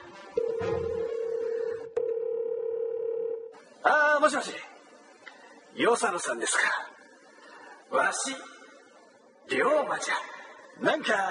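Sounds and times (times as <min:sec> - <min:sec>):
steady telephone line tone: 0:00.4 - 0:03.6
speech: 0:03.8 - 0:04.7, 0:05.8 - 0:06.9, 0:07.9 - 0:08.5, 0:09.5 - 0:11.2.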